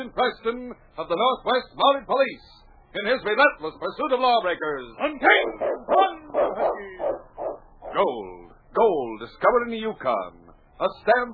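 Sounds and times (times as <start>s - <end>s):
speech: 0.0s - 7.2s, 7.9s - 11.3s
lead sled dog barking in the Yukon: 5.0s - 8.0s.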